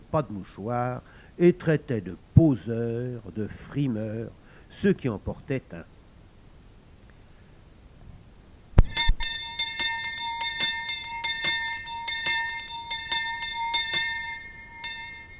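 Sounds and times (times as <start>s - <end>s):
speech: 0.1s - 5.9s
church bell ringing to call latecomers: 8.9s - 15.3s.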